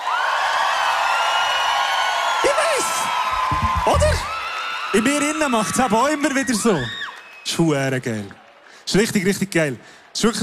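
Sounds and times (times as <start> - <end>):
crowd applauding and cheering for a band on stage: 0.0 - 9.4
speech: 4.9 - 10.4.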